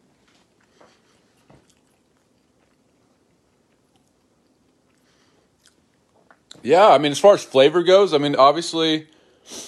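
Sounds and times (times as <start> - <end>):
chewing crunchy crust of frozen garlic bread: 0.0 - 6.6
speech: 6.6 - 9.6.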